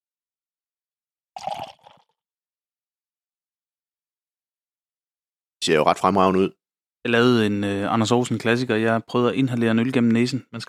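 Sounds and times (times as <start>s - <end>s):
barley wine being poured into a glass: 1.4s - 2.2s
speech: 5.6s - 10.6s.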